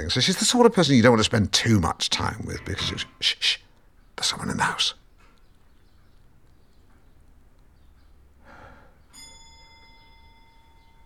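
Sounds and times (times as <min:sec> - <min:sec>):
speech: 0:00.0 - 0:03.6, 0:04.2 - 0:05.0
long case clock chiming: 0:09.1 - 0:11.0.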